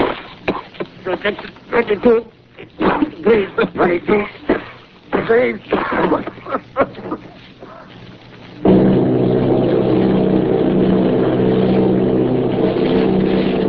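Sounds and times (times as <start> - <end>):
speech: 1.1 - 4.4, 5.2 - 7.0
bomber airplane propeller engines droning: 8.6 - 13.6.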